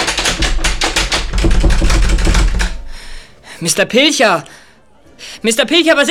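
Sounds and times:
key rattling and clicking as a door is locked: 0:00.0 - 0:03.2
speech: 0:03.6 - 0:04.6, 0:05.4 - 0:06.0.

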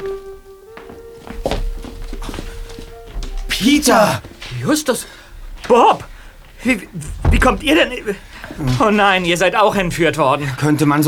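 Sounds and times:
soft footsteps: 0:00.0 - 0:10.9
steady hum: 0:00.4 - 0:11.0
door opening with a dull thunk and a brief scrape: 0:01.6 - 0:10.1
speech: 0:03.6 - 0:11.0.

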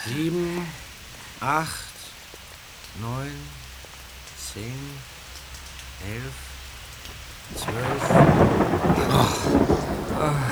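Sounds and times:
speech: 0:00.0 - 0:00.8, 0:01.4 - 0:01.9, 0:03.0 - 0:03.6, 0:04.4 - 0:05.1, 0:06.0 - 0:06.5, 0:07.5 - 0:09.6
light rain pattering on a surface: 0:00.0 - 0:10.5
rolling rumble of thunder from an approaching thunderstorm: 0:06.3 - 0:10.5.

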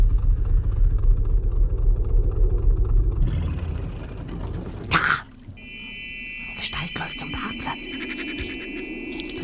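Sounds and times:
motorboat engine droning with a deep rumble: 0:00.0 - 0:04.9
quieter higher-pitched tonal noises: 0:05.6 - 0:09.4.

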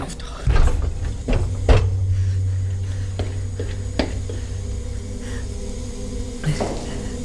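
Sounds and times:
steady low mechanical hum: 0:00.0 - 0:07.2
softer knocks and rattles: 0:00.4 - 0:05.1
heavy cold room door shut with a solid clunk: 0:00.5 - 0:02.5.

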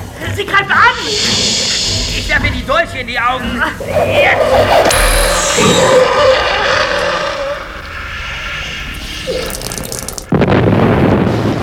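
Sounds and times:
hissing watery background: 0:00.0 - 0:10.4
speech: 0:00.4 - 0:06.6
loud roaring explosion blast: 0:04.9 - 0:11.3.

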